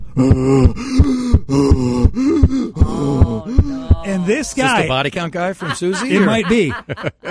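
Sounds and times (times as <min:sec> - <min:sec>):
voice imitating heavy panting of a runner: 0:00.0 - 0:04.9
speech: 0:00.2 - 0:03.4, 0:04.1 - 0:07.2
laughter: 0:03.0 - 0:07.2.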